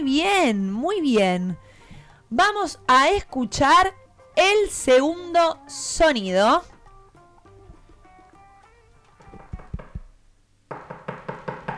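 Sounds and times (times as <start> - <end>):
speech: 0.0 - 1.7, 2.3 - 6.7
knocking on a door: 9.2 - 11.7.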